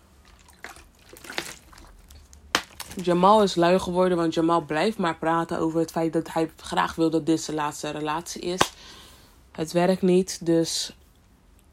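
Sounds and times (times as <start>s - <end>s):
sips of water: 0.2s - 2.2s
swallowing water: 0.2s - 2.2s
speech: 3.0s - 9.0s, 9.6s - 11.0s.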